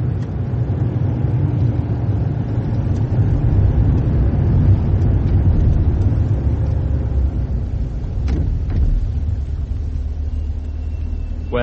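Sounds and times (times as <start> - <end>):
car engine rumbling: 0.0 - 11.6
road noise: 0.0 - 11.6.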